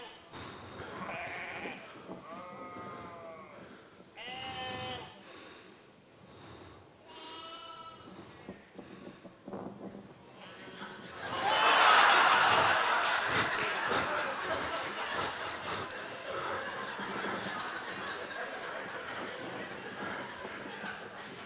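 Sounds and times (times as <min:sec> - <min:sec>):
sheep bleating in a played video clip: 0:00.8 - 0:05.2, 0:07.1 - 0:08.1
laughter: 0:10.2 - 0:21.4.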